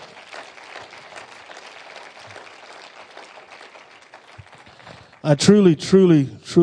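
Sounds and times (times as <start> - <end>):
audience clapping: 0.0 - 6.0
speech: 5.2 - 6.6.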